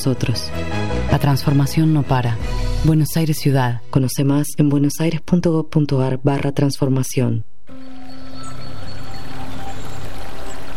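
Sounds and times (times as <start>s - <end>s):
speech: 0.0s - 7.8s
stream water flowing and burbling in Córdoba province in summer: 7.7s - 10.7s.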